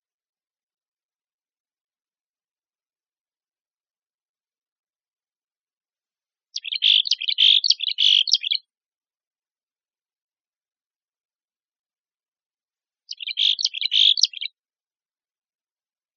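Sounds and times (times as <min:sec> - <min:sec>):
Mexican Chickadee calls: 0:06.5 - 0:08.6, 0:13.1 - 0:14.5.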